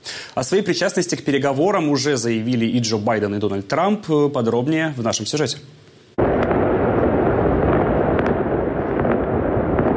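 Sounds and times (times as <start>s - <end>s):
speech: 0.4s - 5.9s
celebratory fireworks exploding: 6.2s - 9.9s.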